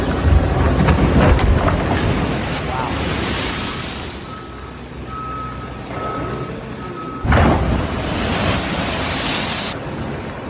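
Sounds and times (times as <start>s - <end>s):
big ocean waves crashing against the coast: 0.0s - 10.4s
faint beeping tone: 4.2s - 7.3s.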